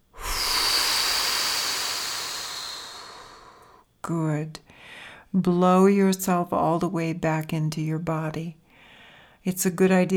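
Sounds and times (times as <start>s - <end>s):
deep breath during a guided breathing exercise: 0.0s - 3.9s, 4.7s - 5.3s, 8.7s - 9.4s
speech: 4.0s - 8.6s, 9.4s - 10.1s.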